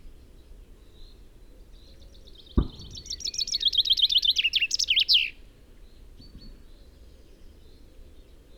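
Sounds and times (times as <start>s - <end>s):
low thump: 2.6s - 3.2s
common chaffinch Fringilla coelebs singing: 2.6s - 5.4s.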